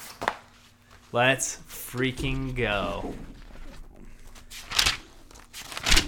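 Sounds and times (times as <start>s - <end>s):
speech: 1.1s - 3.4s
notebook pages of handwritten notes being turned: 4.5s - 6.0s.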